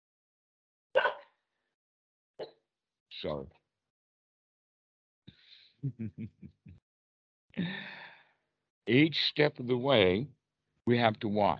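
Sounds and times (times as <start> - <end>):
dogs barking: 1.0 - 1.2
speech: 3.2 - 3.6, 5.8 - 6.8, 7.6 - 8.0, 8.8 - 11.5
laughter: 5.8 - 6.7.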